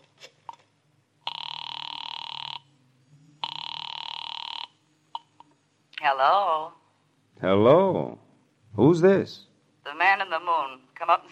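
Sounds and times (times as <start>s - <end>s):
telephone ringing through a receiver: 1.2s - 2.8s, 3.4s - 5.4s
speech: 6.0s - 6.8s, 7.4s - 8.2s, 8.8s - 9.5s, 10.3s - 11.3s.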